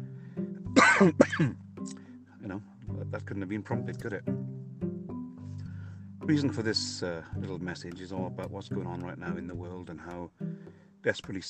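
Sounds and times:
harsh rasping coughs: 0.8 - 1.6
speech: 1.0 - 4.4, 6.3 - 11.4.

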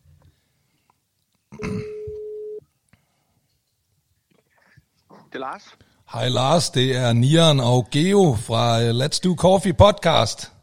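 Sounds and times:
electronic ringback tone of an outgoing phone call: 1.6 - 2.6
speech: 5.3 - 10.6.

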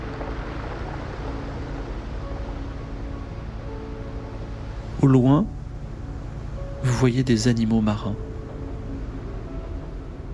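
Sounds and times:
dull rumble of rushing water: 0.0 - 10.3
speech: 5.0 - 5.6, 6.8 - 8.3.

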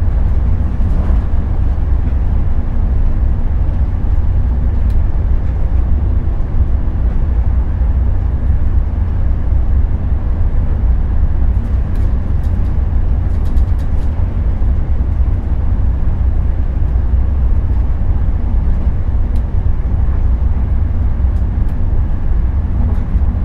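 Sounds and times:
sleeper train carriages heavy steady low rumble: 0.0 - 23.4.

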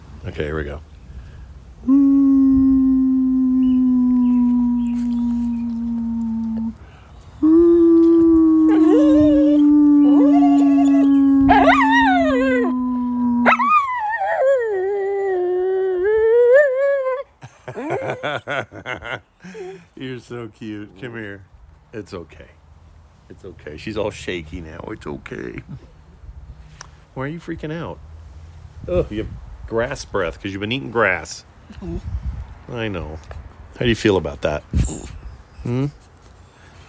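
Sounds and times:
speech: 0.2 - 0.9, 20.2 - 22.6, 23.4 - 26.0, 27.2 - 28.1, 28.8 - 32.1, 32.7 - 36.0
dog howling: 2.5 - 6.8, 7.6 - 17.2
dog yipping and whining: 8.0 - 12.7, 13.4 - 14.8.

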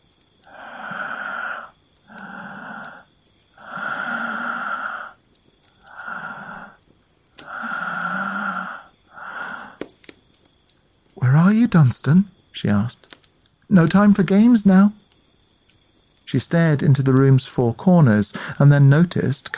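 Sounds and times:
wet raspy heavy breathing: 0.4 - 6.8, 7.4 - 9.8, 18.3 - 18.7
speech: 11.7 - 13.1, 13.7 - 15.0, 16.3 - 19.5.

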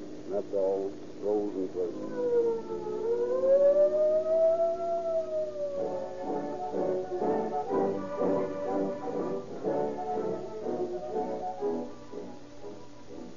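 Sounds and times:
speech: 0.3 - 3.8
toy police siren whistle shrieking: 1.8 - 12.4.

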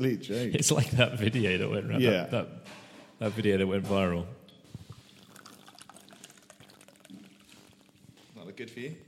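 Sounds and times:
speech: 0.0 - 4.4, 8.6 - 9.0
hot water from a separate pot pouring into a mug of British tea with milk: 4.8 - 8.3.

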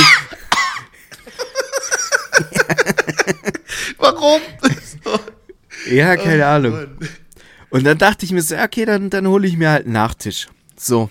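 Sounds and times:
person imitating a child coughing with open mouth and tongue stuck out: 0.0 - 0.9
laughter: 0.0 - 7.3
speech: 4.2 - 5.3, 5.9 - 7.0, 7.7 - 11.0.

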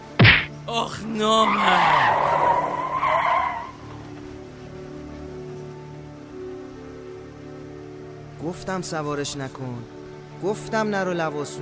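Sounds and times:
speech: 0.7 - 2.6, 8.4 - 11.6
car tires squealing while skidding on a dirt road: 1.4 - 4.2.

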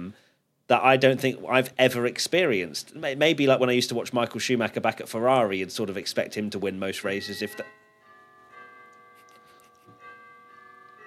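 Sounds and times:
speech: 0.1 - 7.8
doorbell ringing with bright chime tones: 7.0 - 11.0.

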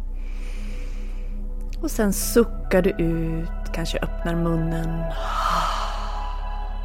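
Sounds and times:
slow deep breath drawn in through the nose: 0.2 - 1.5, 5.1 - 6.7
speech: 1.8 - 5.4.

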